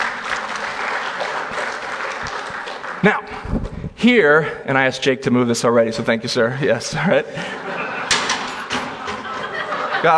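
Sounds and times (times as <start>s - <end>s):
audience applause after a contest round: 0.0s - 3.3s
speech: 3.0s - 7.8s
laughter: 6.9s - 10.1s.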